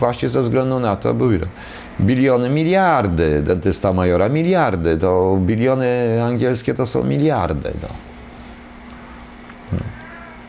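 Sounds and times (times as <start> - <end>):
speech: 0.0 - 8.1, 9.7 - 10.0
steady low electrical hum: 0.0 - 10.4
cat meowing at a closed door: 9.7 - 10.4.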